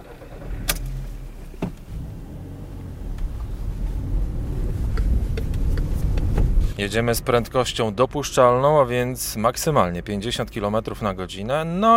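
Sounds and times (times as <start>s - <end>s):
car interior hum and low engine rumble driving through city streets in Białystok Poland: 0.0s - 11.9s
road noise of a car on city streets in Białystok Poland: 0.0s - 11.9s
sharp clicks and knocks inside a car: 4.9s - 6.6s
speech: 6.8s - 11.9s.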